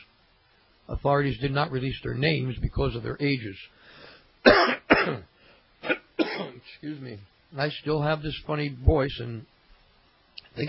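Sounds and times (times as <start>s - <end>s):
speech: 1.0s - 6.0s, 6.7s - 9.5s
person coughing: 4.4s - 6.6s
person clearing throat: 4.5s - 6.6s.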